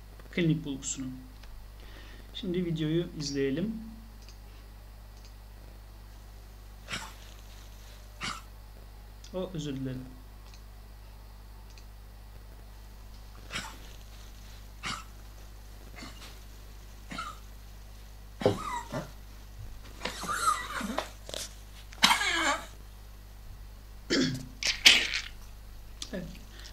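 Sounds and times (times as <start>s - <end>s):
speech: 0.4s - 1.3s, 2.4s - 4.0s, 9.3s - 10.2s
dog with left heart failure coughing: 6.8s - 7.4s, 8.2s - 8.5s, 13.4s - 14.0s, 14.8s - 15.2s, 16.0s - 16.4s, 17.1s - 17.5s, 18.4s - 19.2s, 20.1s - 22.8s, 24.1s - 25.2s.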